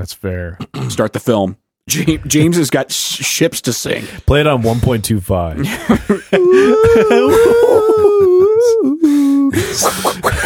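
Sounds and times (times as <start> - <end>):
speech: 0.0 - 10.4
laughter: 5.6 - 10.4
person imitating a whale call: 6.4 - 9.6.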